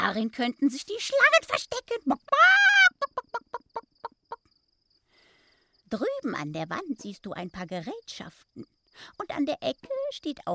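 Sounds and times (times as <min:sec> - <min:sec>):
speech: 0:00.1 - 0:02.8, 0:05.9 - 0:10.5
chicken clucking: 0:02.9 - 0:04.5.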